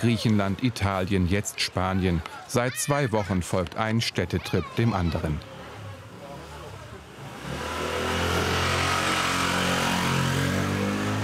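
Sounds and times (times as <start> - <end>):
speech: 0.0 - 5.5
motorcycle engine accelerating through narrow city streets: 6.6 - 11.2.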